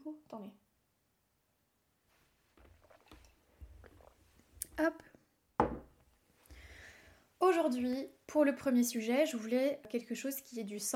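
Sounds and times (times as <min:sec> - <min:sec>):
speech: 0:00.3 - 0:00.6, 0:04.8 - 0:05.1, 0:07.6 - 0:10.9
person sipping a drink with wet mouth noises: 0:02.6 - 0:04.7
person gulping: 0:02.8 - 0:04.7.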